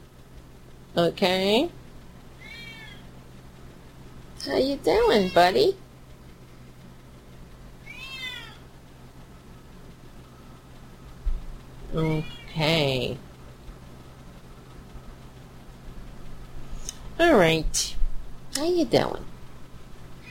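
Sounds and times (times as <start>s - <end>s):
faint hum: 0.0s - 20.2s
speech: 1.0s - 1.8s, 4.4s - 5.8s, 12.0s - 13.3s, 17.2s - 18.0s, 18.6s - 19.3s
cat meowing: 2.4s - 3.1s, 7.8s - 8.6s.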